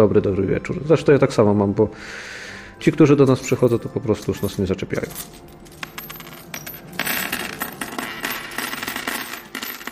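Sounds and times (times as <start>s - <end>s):
speech: 0.0s - 5.5s
aluminium coins from communist-era Poland spilling and clinking: 2.9s - 9.9s.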